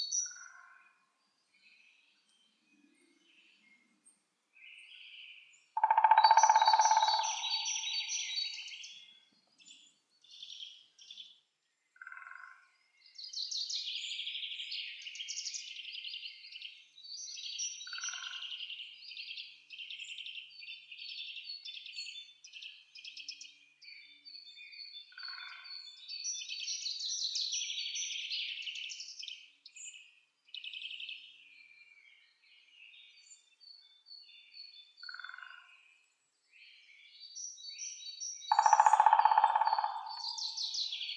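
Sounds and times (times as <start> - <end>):
woodpeckers Picidae: 5.8 - 8.6, 38.5 - 41.0.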